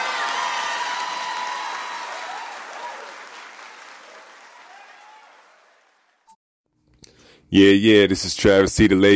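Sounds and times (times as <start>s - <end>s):
scattered cheers and whoops: 0.0s - 6.0s
crowd applauding: 0.0s - 6.3s
speech: 7.5s - 9.1s.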